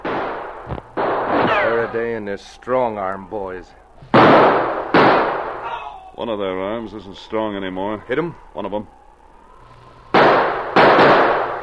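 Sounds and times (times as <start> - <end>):
loud gunshots in a snowy wilderness standoff: 0.0 - 2.1, 4.1 - 5.6, 10.1 - 11.6
speech: 1.8 - 3.8, 6.2 - 9.0.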